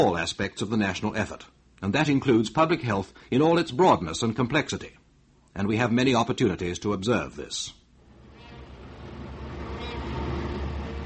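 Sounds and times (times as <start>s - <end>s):
speech: 0.0s - 5.0s, 5.6s - 7.8s
trams and buses grinding through a busy street: 8.0s - 11.0s.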